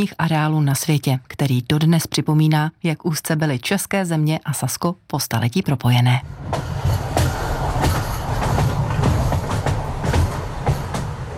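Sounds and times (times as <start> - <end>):
speech: 0.0 - 6.7
train rumbling across a railway viaduct: 5.9 - 11.3
train wheels clacking over rail joints: 6.3 - 11.3.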